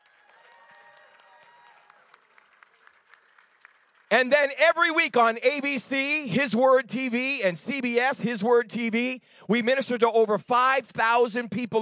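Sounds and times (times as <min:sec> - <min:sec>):
audience applauding: 0:00.0 - 0:04.2
crowd cheering: 0:00.0 - 0:04.2
speech: 0:04.1 - 0:11.8.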